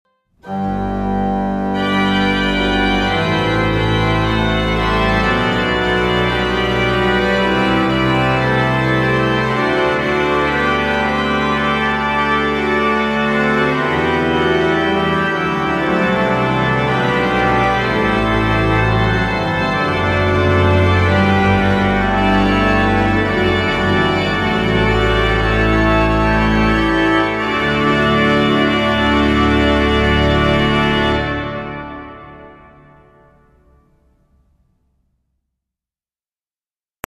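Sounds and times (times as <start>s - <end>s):
physharmonica: 0.4s - 33.0s.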